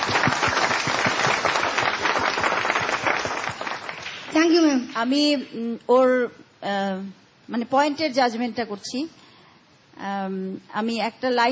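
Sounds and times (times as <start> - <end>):
audience clapping: 0.0 - 4.7
speech: 4.4 - 9.2, 10.0 - 11.5.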